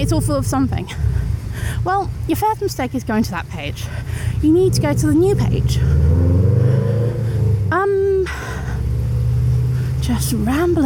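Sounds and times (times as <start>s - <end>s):
speech: 0.0s - 6.6s, 10.1s - 10.8s
car engines idling in stationary traffic: 0.0s - 10.8s
car engine revving: 4.4s - 10.8s.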